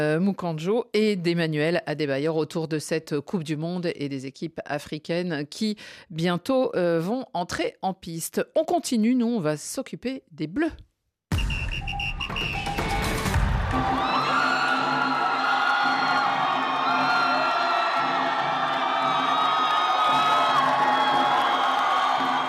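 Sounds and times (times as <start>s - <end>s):
speech: 0.0s - 10.9s, 12.3s - 12.7s
large enthusiastic crowd cheering and shouting at a hotel: 12.7s - 22.4s.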